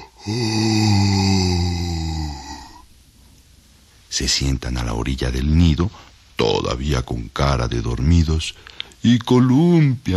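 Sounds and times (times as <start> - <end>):
person imitating the yawn of animals waking: 0.0 - 2.8
speech: 0.2 - 0.8, 4.2 - 10.1.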